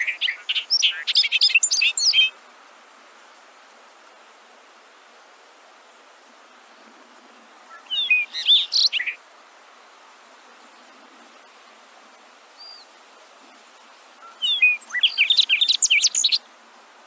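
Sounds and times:
Bobolink bubbly metallic jumbled song: 0.0s - 2.3s, 7.8s - 9.2s, 14.2s - 16.4s.

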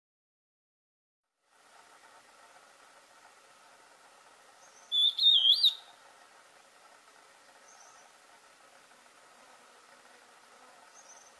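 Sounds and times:
antbird song: 4.6s - 5.9s.

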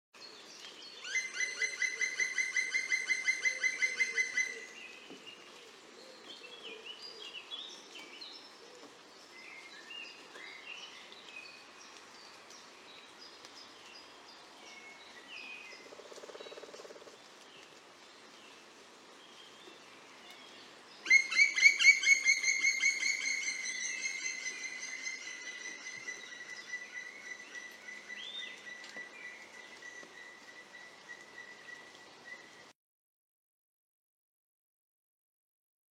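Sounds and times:
black woodpecker call: 1.1s - 4.7s, 21.1s - 28.2s.

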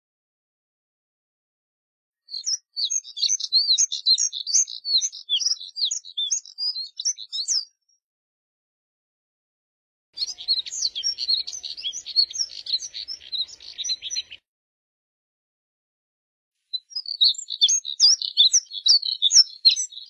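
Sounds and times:
Moussier's redstart singing with hurried squeaky high-pitched twittering: 2.3s - 7.7s, 10.2s - 14.4s, 16.8s - 20.0s.

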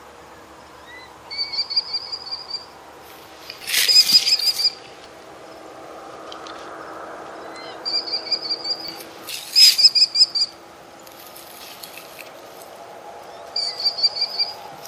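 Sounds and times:
American kestrel shrill repeated high calls: 0.8s - 2.8s, 3.5s - 12.4s, 13.2s - 14.8s.

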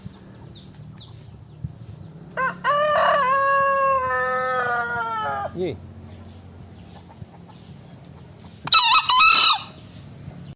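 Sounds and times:
green rooster crowing: 2.3s - 5.7s, 8.7s - 9.7s.

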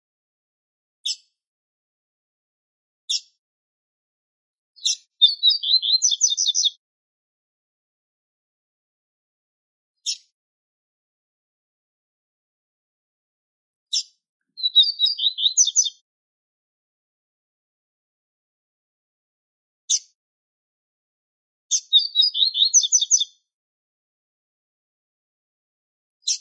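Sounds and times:
male Double-collared seedeater twittering song: 3.1s - 3.4s, 4.8s - 6.8s, 10.0s - 10.3s, 13.9s - 16.0s, 21.7s - 23.4s.

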